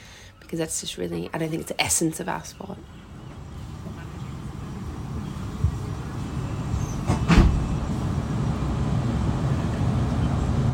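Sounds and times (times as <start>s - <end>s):
speech: 0.5s - 3.1s
low rumble of wheels and carriage inside a moving passenger train: 2.4s - 10.7s.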